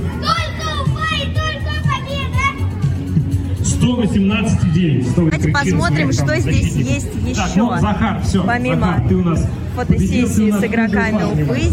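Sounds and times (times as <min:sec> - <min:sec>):
children shouting into a microphone in a shouting contest before a football match: 0:00.0 - 0:03.0
crowd noise at an event before a football match: 0:00.0 - 0:11.7
speech: 0:03.9 - 0:11.7.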